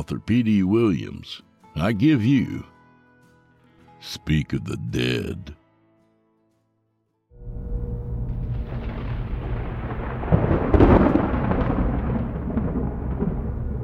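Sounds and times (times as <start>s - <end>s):
speech: 0.0s - 2.7s, 4.0s - 5.6s
deep low thunder rumbling: 7.5s - 13.8s.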